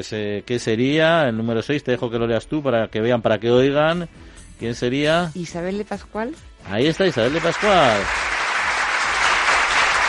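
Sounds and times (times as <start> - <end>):
speech: 0.0 - 8.3
small group applauding: 6.9 - 10.0.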